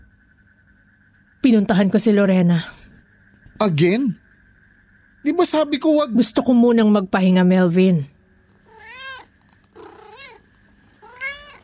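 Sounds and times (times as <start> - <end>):
speech: 1.5 - 2.8, 3.6 - 4.2, 5.2 - 8.1
cat meowing plaintively: 8.6 - 11.6.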